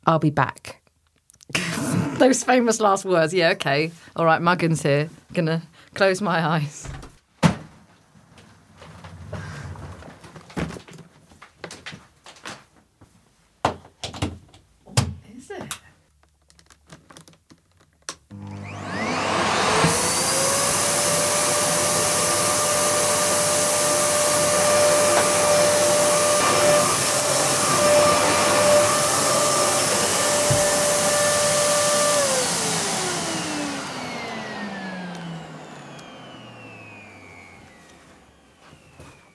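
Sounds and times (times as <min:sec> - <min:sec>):
speech: 0:00.0 - 0:00.8, 0:01.5 - 0:07.0
Hoover vacuum cleaner blowing hot air: 0:01.6 - 0:02.4, 0:18.4 - 0:39.3.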